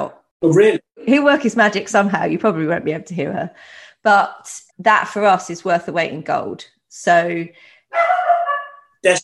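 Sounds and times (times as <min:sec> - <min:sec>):
speech: 0:00.0 - 0:09.2
small dog whining yelp: 0:07.9 - 0:08.9.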